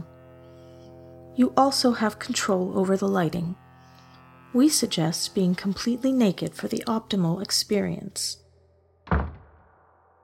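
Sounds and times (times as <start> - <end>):
speech: 1.4 - 3.6, 4.5 - 8.4
door shutting with a solid thud: 9.1 - 9.6.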